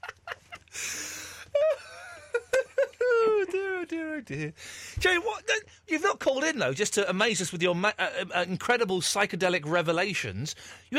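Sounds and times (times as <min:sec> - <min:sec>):
laughter: 0:00.0 - 0:00.8, 0:01.5 - 0:04.5
person imitating heavy breathing: 0:00.7 - 0:01.6, 0:04.6 - 0:05.0
speech: 0:04.2 - 0:10.9.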